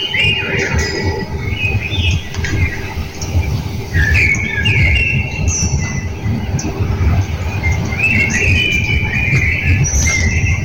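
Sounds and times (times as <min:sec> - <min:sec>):
loud steady low rumble: 0:00.0 - 0:03.8
blackbirds singing in the morning: 0:00.0 - 0:10.6.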